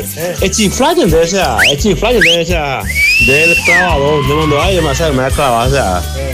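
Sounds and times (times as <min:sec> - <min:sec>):
loud busy backdrop of voices: 0:00.0 - 0:06.3
music: 0:00.0 - 0:06.3
person whistling rising glides and a held note: 0:01.6 - 0:04.0.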